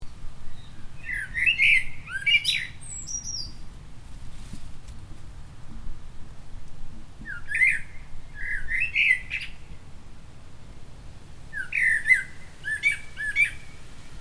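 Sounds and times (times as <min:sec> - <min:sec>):
low background rumble: 0:00.0 - 0:14.1
Common blackbird Turdus merula chirping calls: 0:00.4 - 0:03.8, 0:07.2 - 0:09.9, 0:11.4 - 0:14.1.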